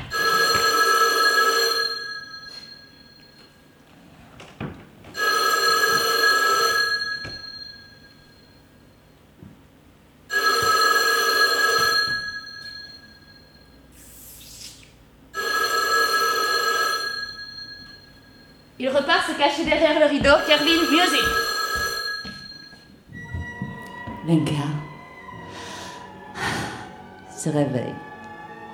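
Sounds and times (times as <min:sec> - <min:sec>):
old-fashioned telephone bell ringing: 0:00.1 - 0:03.9, 0:05.2 - 0:08.9, 0:10.3 - 0:13.9, 0:15.4 - 0:24.2
speech: 0:18.9 - 0:21.4, 0:24.3 - 0:24.7, 0:27.5 - 0:28.0.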